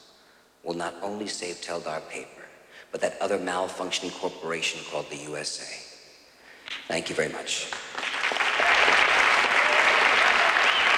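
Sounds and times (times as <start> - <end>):
speech: 0.6 - 5.9, 6.9 - 8.0
crowd applause after a speech: 7.9 - 10.9.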